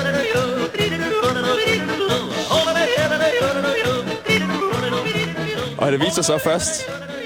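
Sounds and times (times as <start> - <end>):
upbeat instrumental background music for a radio afternoon show: 0.0 - 7.2
speech: 5.9 - 7.0.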